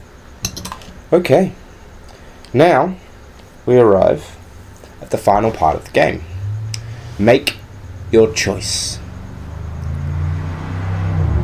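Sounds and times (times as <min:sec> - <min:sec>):
speech: 0:01.1 - 0:01.6, 0:02.5 - 0:03.0, 0:03.7 - 0:04.4, 0:05.0 - 0:06.3, 0:07.2 - 0:09.0
steady road noise: 0:03.0 - 0:11.4
car engine roaring as it speeds past: 0:05.3 - 0:11.4.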